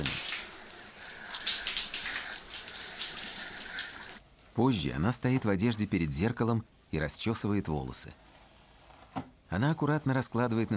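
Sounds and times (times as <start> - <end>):
shower water running: 0.0 - 4.2
speech: 4.6 - 8.3, 9.2 - 10.7.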